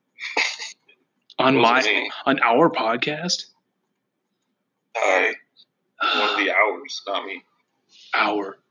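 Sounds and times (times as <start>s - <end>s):
person sneezing with breathy intake: 0.2s - 0.7s, 6.0s - 6.7s
speech: 1.4s - 3.5s, 5.0s - 5.4s, 6.0s - 7.5s, 8.1s - 8.6s.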